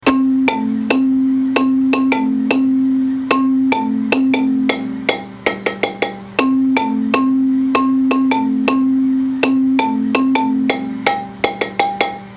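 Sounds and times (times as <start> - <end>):
baritone marimba solo: 0.0 - 12.3.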